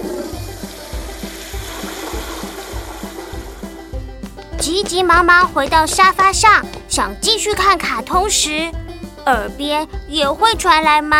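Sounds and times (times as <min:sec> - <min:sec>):
toilet flushing after someone urinates: 0:00.0 - 0:04.0
low rhythmic pulse: 0:00.0 - 0:10.7
speech: 0:04.6 - 0:11.1.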